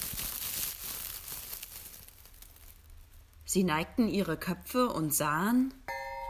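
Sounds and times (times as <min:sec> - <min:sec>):
crinkly papery rustling: 0:00.0 - 0:03.5
speech: 0:03.5 - 0:05.8.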